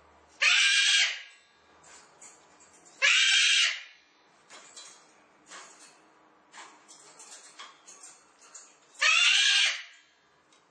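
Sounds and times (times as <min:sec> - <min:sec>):
cockatoo loud harsh screech: 0:00.4 - 0:01.3, 0:03.0 - 0:03.9, 0:09.0 - 0:09.9.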